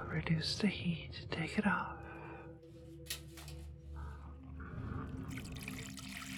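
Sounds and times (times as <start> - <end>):
speech: 0.2 - 2.1
liquid pouring into a cup: 5.3 - 6.3.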